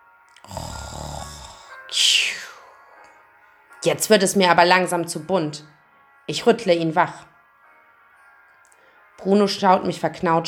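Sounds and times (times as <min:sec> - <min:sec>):
man snoring: 0:00.4 - 0:01.9
speech: 0:03.8 - 0:07.3, 0:09.2 - 0:10.4.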